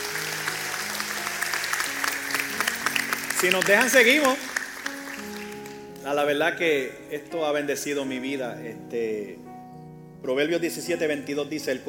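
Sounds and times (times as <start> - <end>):
audience applauding: 0.0 - 5.8
speech: 3.4 - 4.5, 6.0 - 9.5, 10.2 - 11.8.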